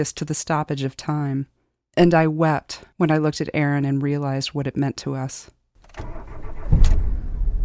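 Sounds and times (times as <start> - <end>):
speech: 0.0 - 6.0
car engine starting and settling into idle: 5.8 - 7.6.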